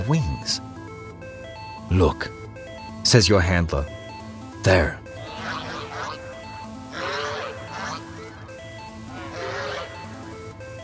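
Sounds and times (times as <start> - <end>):
speech: 0.0 - 0.8, 1.9 - 2.4, 3.1 - 4.0, 4.6 - 5.0
large flock of ducks quacking overhead: 5.2 - 8.5, 9.1 - 10.3.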